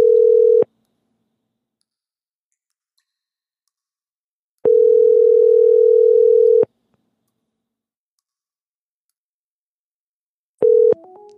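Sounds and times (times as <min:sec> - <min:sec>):
telephone ringback tone on a telephone line: 0:00.0 - 0:00.7, 0:04.7 - 0:06.7, 0:10.6 - 0:11.3.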